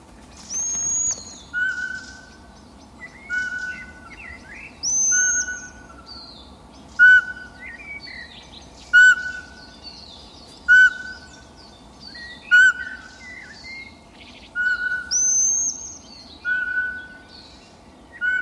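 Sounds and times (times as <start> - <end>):
small birds chirping and singing: 0.0 - 18.4
Eurasian pygmy owl whistling call: 0.5 - 2.4, 3.0 - 6.0, 7.0 - 8.1, 8.9 - 9.7, 10.7 - 11.4, 12.2 - 14.0, 14.6 - 17.3, 18.2 - 18.4.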